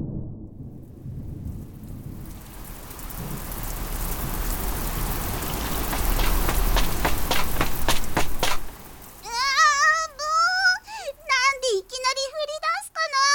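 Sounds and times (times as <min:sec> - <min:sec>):
low rumbling: 0:00.0 - 0:09.3
rain falling: 0:00.8 - 0:13.2.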